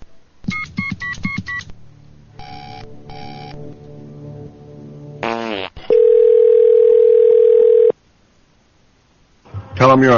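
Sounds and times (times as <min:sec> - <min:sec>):
telephone keypad tones: 0:06.0 - 0:07.9.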